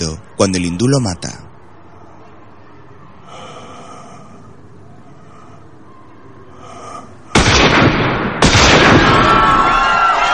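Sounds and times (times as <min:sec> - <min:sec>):
speech: 0:00.4 - 0:01.4
gunfire in a shootout between rebels and armed men: 0:07.3 - 0:09.8.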